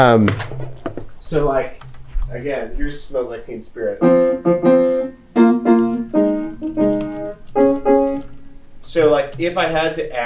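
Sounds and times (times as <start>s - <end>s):
speech: 0.0s - 4.8s, 8.9s - 10.2s
piano playing a rock song's chord progression: 3.8s - 9.8s.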